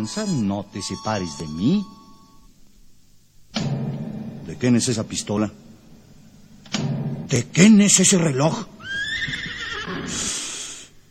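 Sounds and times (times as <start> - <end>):
speech: 0.0 - 2.0, 4.5 - 5.6, 7.3 - 9.4
horse neighing in a corral: 8.7 - 10.4.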